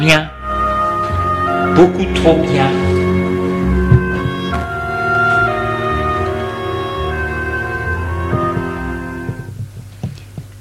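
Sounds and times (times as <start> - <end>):
speech: 0.0 - 0.4, 1.6 - 3.0
sustained musical tone: 0.0 - 9.6
sharp knocking on a door: 8.3 - 10.5.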